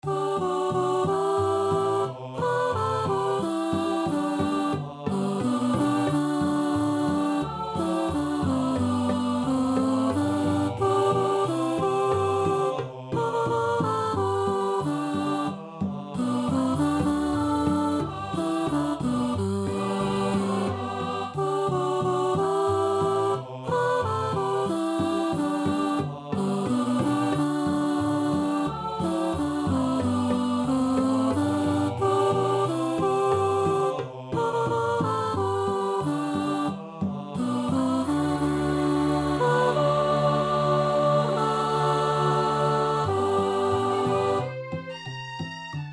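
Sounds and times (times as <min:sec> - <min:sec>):
chorus singing: 0:00.0 - 0:45.8.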